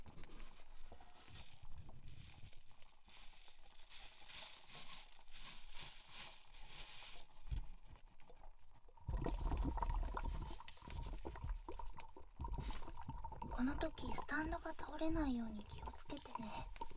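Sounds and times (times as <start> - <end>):
hot water bubbling and gurgling as it rises in a coffee siphon: 8.9 - 16.9
speech: 13.6 - 16.8.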